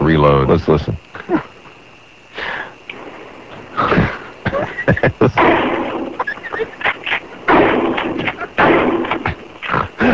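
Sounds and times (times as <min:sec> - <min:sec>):
speech: 0:00.1 - 0:01.5, 0:05.2 - 0:05.6
laughter: 0:03.7 - 0:05.5, 0:06.3 - 0:07.0, 0:09.2 - 0:10.1
shotgun blasts hitting a car: 0:07.5 - 0:09.2.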